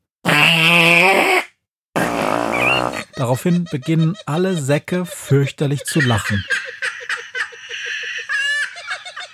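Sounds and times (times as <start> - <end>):
buzzy fart noises blown into cupped hands pressed against the lips: 0.2 - 3.1
laughter: 3.0 - 9.3
speech: 3.2 - 6.7.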